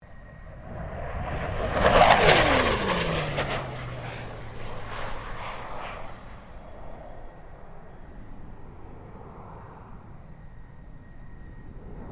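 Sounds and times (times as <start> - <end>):
FA-18 Hornet fighter jet passing: 0.1 - 12.1.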